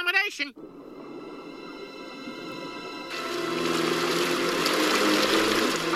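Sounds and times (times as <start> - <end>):
speech: 0.3 - 0.8
water sloshing and splashing from someone swimming at night: 2.7 - 5.9.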